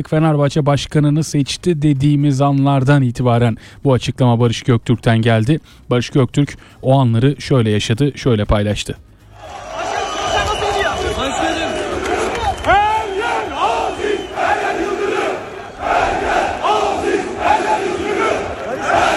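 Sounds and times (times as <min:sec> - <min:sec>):
speech: 0:00.0 - 0:09.6
crowd chanting supporters' chant during a club presidential election: 0:09.3 - 0:19.1.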